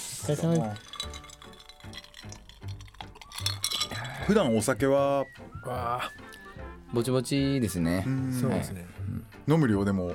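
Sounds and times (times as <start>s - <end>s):
speech: 0.2s - 1.0s, 4.3s - 6.2s, 6.9s - 10.1s
glasses clinking in a toast: 0.2s - 4.8s
faint tableware sounds: 0.3s - 4.4s.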